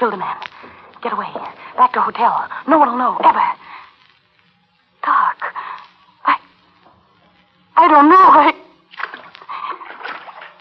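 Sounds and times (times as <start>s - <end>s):
speech: 0.0s - 3.8s, 7.8s - 8.6s
splashing and sloshing through water on a flooded basement floor: 9.0s - 10.5s.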